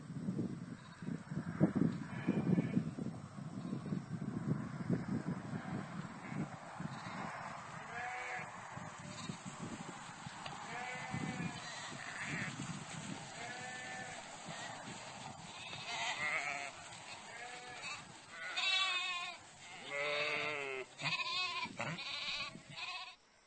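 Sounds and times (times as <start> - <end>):
wind rushing: 0.1 - 20.6
sheep bleating outdoors: 5.6 - 9.5, 10.6 - 23.2.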